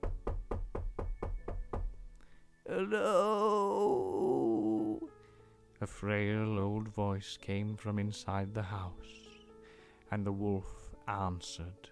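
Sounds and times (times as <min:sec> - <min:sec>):
knocking on a door: 0:00.0 - 0:02.1
speech: 0:02.7 - 0:04.4, 0:05.8 - 0:09.2, 0:10.1 - 0:11.9.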